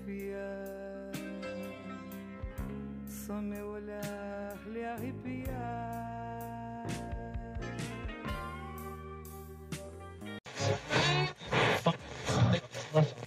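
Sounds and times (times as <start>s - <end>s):
person singing warmly: 0.0s - 2.3s, 3.1s - 9.0s, 10.6s - 11.4s
love song playing: 0.0s - 11.7s
speech: 3.3s - 6.0s.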